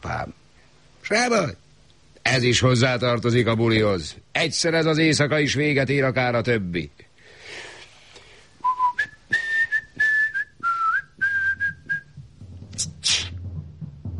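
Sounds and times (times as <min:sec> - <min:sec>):
speech: 0:00.0 - 0:00.4, 0:01.0 - 0:01.6, 0:02.3 - 0:07.1
person whistling a short tune: 0:08.6 - 0:12.2
low rumbling background: 0:11.8 - 0:14.1.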